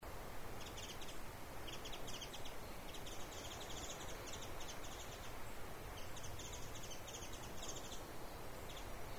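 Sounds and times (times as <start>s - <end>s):
Japanese white-eye calling: 0.6s - 9.1s.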